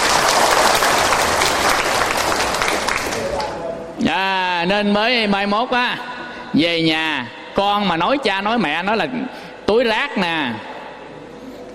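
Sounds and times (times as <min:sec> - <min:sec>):
audience applause: 0:00.0 - 0:03.5
speech: 0:04.6 - 0:10.7.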